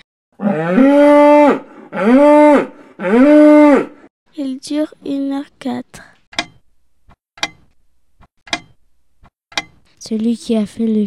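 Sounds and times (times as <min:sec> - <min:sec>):
speech: 0:00.4 - 0:03.9, 0:04.6 - 0:06.1, 0:10.0 - 0:11.0
cow mooing: 0:00.4 - 0:04.0.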